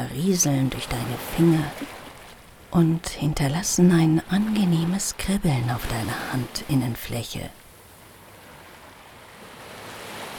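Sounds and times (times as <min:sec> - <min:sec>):
speech: 0:00.0 - 0:02.0, 0:02.7 - 0:07.6
sea surf waves rushing: 0:00.0 - 0:10.3.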